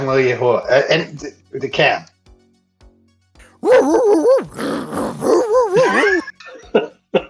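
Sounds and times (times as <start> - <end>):
speech: 0.0 - 2.1, 3.6 - 6.9
dog growling: 3.4 - 6.2.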